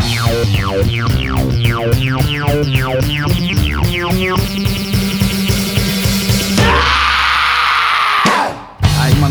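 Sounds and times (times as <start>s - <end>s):
wobbling bass: 0.0s - 7.1s, 8.8s - 9.2s
rock song with rhythmic pulsing instruments: 0.0s - 9.2s
sudden harsh scream in a rock song: 6.6s - 8.8s.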